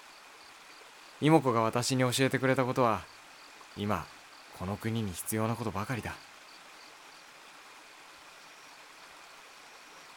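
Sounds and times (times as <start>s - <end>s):
stream water rushing: 0.0s - 10.1s
speech: 1.2s - 3.2s, 3.8s - 6.3s.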